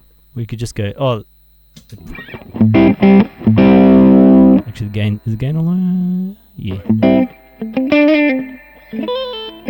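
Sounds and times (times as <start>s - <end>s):
speech: 0.4s - 3.6s, 4.8s - 9.6s
electric guitar notes and chords from a P90 pickup through an amp with reverb: 1.9s - 9.6s.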